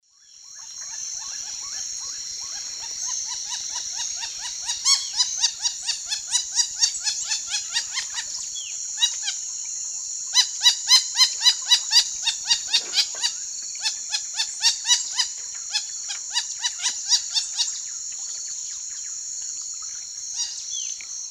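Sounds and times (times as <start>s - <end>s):
Jacana jacana calls in the Eastern Lowlands of South America: 0.6s - 9.5s, 10.3s - 17.8s.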